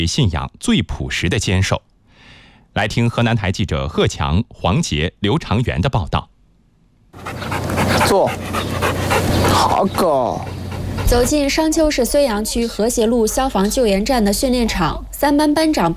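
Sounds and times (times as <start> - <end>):
speech: 0.0 - 1.9, 2.8 - 6.3, 7.1 - 15.9
search-and-rescue dog whining and yelping: 7.2 - 9.7
search-and-rescue dog panting during obedience training: 7.2 - 11.9.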